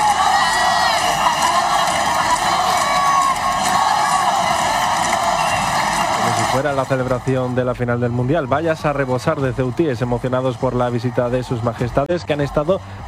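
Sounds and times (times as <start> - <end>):
whoops: 0.0 - 6.6
large crowd of residents cheering and chanting in Ceuta: 0.0 - 13.0
speech: 6.6 - 13.0.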